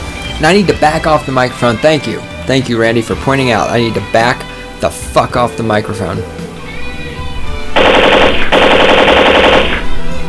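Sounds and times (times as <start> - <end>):
speech: 0.4 - 6.4
M60 machine gun firing automatic bursts: 7.8 - 9.9.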